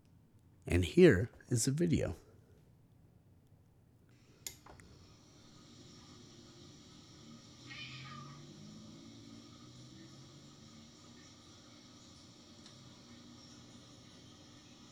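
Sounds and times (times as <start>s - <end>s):
speech: 0.7s - 2.2s
cat meowing at a door: 7.6s - 8.4s.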